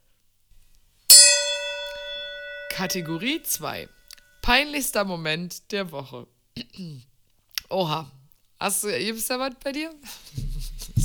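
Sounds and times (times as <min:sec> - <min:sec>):
gong struck as segment transition: 0:01.1 - 0:03.8
speech: 0:02.8 - 0:07.1, 0:07.7 - 0:10.4.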